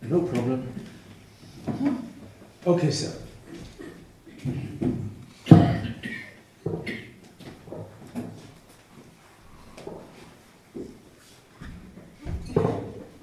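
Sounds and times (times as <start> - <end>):
speech: 0.1 - 1.0, 2.7 - 3.2
wooden chair being carried over and set down: 3.6 - 5.9, 6.6 - 8.6, 11.6 - 13.2.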